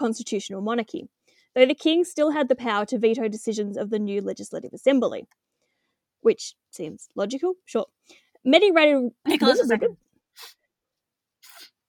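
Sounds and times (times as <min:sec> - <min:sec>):
speech: 0:00.0 - 0:05.4, 0:06.2 - 0:10.6
person sneezing: 0:11.4 - 0:11.7.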